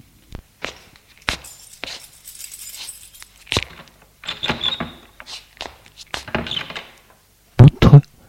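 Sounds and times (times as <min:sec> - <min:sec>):
keys jangling and scraping: 0:00.7 - 0:07.1
apartment door being opened: 0:03.5 - 0:07.2.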